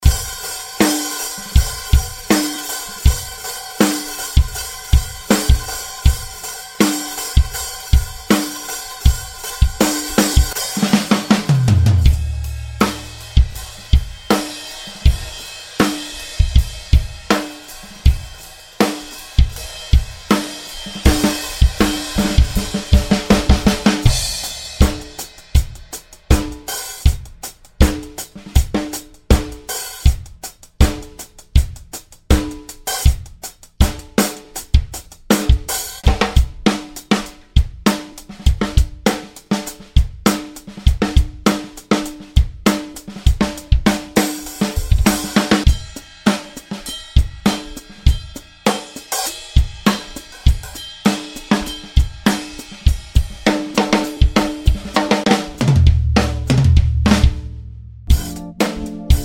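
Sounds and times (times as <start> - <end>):
live pop drums: 0.0 - 59.2.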